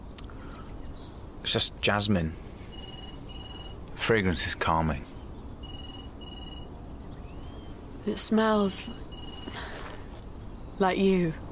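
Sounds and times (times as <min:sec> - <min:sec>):
steady low hum: 0:00.0 - 0:11.4
speech: 0:01.5 - 0:02.4, 0:04.0 - 0:05.1, 0:08.0 - 0:09.7, 0:10.8 - 0:11.4
telephone ringing with shrill electronic trills: 0:02.7 - 0:03.8, 0:05.6 - 0:06.8, 0:09.1 - 0:09.6.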